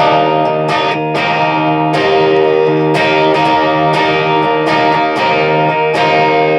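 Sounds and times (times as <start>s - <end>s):
heavily distorted electric guitar riff: 0.0s - 6.5s.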